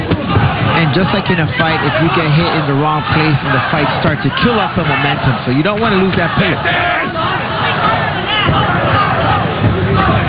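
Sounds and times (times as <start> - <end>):
large indoor arena crowd cheering: 0.0 - 10.2
speech: 1.0 - 7.4.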